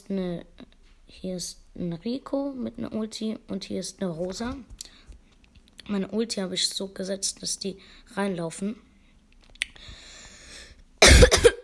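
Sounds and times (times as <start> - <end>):
faint hiss: 0.0 - 11.6
speech: 0.1 - 5.0, 5.9 - 8.9
person coughing into the microphone: 11.0 - 11.6.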